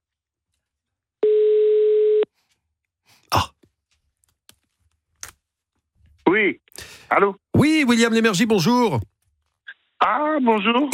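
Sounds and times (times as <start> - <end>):
telephone ringing tone on an outgoing call: 1.2 - 2.3
speech: 3.3 - 3.5, 6.3 - 9.1, 10.0 - 10.9.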